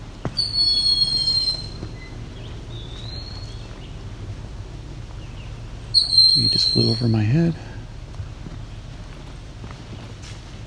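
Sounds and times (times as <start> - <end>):
low outdoor rumble: 0.0 - 10.6
eastern wood-pewee whistled call: 0.3 - 3.6, 5.9 - 7.0
speech: 6.4 - 7.7.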